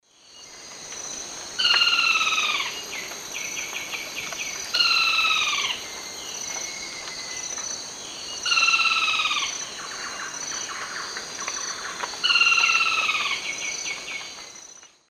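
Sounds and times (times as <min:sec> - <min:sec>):
Automolus rufipileatus singing: 0:01.6 - 0:14.8.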